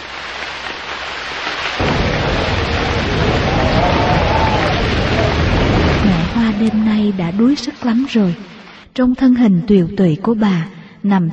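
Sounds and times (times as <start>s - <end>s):
heavy rain pouring on a cold winter night: 0.0s - 9.0s
faint howling north wind: 1.8s - 7.7s
low rumble: 1.8s - 8.9s
speech: 6.5s - 11.3s.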